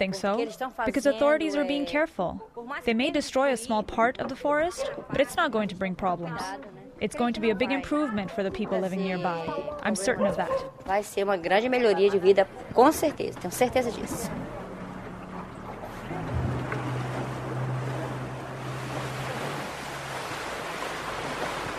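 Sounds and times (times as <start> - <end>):
speech: 0.0 - 14.6
broad rushing water splash: 12.4 - 21.7
boat engine drone on open water: 12.5 - 21.7.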